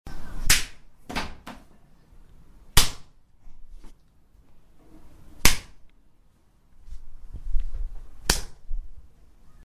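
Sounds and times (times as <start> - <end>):
slap in the face: 0.5 - 1.4, 2.8 - 3.2, 5.4 - 5.8, 8.2 - 8.6.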